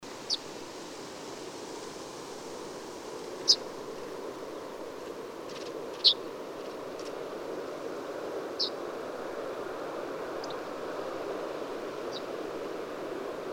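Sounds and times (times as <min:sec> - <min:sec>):
steady broad background hiss: 0:00.0 - 0:13.5
migrating yellowhammer giving short sharp high ticking flight calls: 0:00.1 - 0:00.5, 0:02.4 - 0:07.3, 0:08.5 - 0:08.9, 0:10.4 - 0:10.8, 0:11.9 - 0:12.5.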